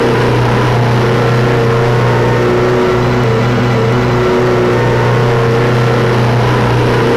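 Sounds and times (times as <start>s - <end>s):
i4 petrol engine: 0.0s - 7.1s.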